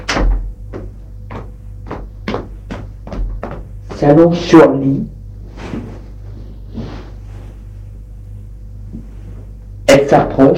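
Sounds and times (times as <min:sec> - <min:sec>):
door being opened with wooden clunks and rattles: 0:00.0 - 0:00.5
low steady hum: 0:00.0 - 0:10.5
speech: 0:04.0 - 0:05.2, 0:10.1 - 0:10.5.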